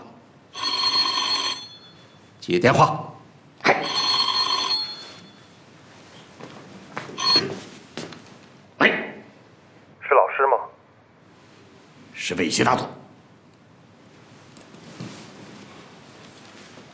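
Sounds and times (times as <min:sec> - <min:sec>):
telephone bell ringing: 0:00.5 - 0:02.4, 0:03.8 - 0:05.7, 0:07.2 - 0:07.8
speech: 0:02.5 - 0:03.1, 0:12.5 - 0:13.0.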